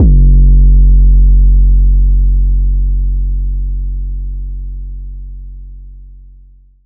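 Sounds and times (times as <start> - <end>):
808 bass drum note F sharp: 0.0 - 4.5.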